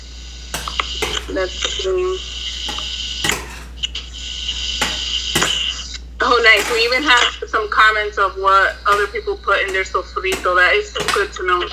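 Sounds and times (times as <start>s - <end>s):
spoon stirring rice in a metal cooking pot: 0.6s - 7.4s, 8.6s - 11.7s
speech: 1.3s - 2.9s, 6.4s - 11.7s.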